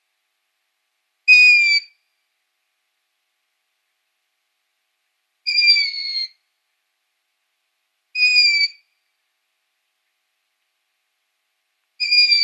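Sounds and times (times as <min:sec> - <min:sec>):
downy young long-eared owl squeaky calls: 0:01.3 - 0:02.0, 0:05.5 - 0:06.4, 0:08.2 - 0:08.8, 0:12.0 - 0:12.4.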